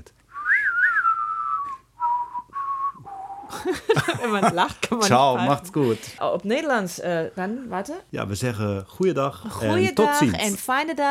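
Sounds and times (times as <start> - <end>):
people whistling a song: 0.3 - 3.6
laughter: 3.5 - 6.1
speech: 3.7 - 11.0.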